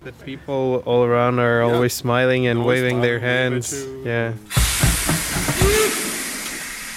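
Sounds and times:
speech: 0:00.0 - 0:05.8
steam hiss from a small park railway locomotive in Karlsruhe Germany: 0:04.5 - 0:06.9
whistle-like tone: 0:05.6 - 0:06.6.

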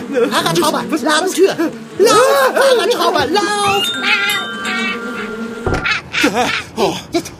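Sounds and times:
speech: 0:00.2 - 0:04.5, 0:06.2 - 0:07.3
bees buzzing in flight through a cat flap: 0:03.6 - 0:06.2.

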